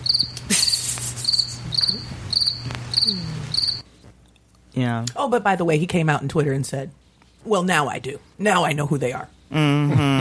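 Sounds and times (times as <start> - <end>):
crickets chirping: 0.0 - 3.8
speech: 1.9 - 2.4, 4.8 - 10.1.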